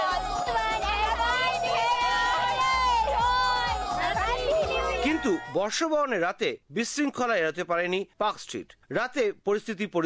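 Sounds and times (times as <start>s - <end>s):
dense crowd shouting, cheering and chattering at New Year's Eve celebration on Park Street in Kolkata: 0.0s - 5.8s
speech: 5.2s - 10.0s.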